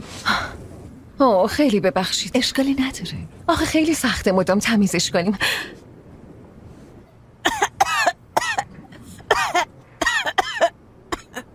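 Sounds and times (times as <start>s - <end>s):
speech: 1.2s - 5.8s
harsh coughing fit from a person with pneumonia: 7.4s - 8.7s, 9.3s - 11.4s.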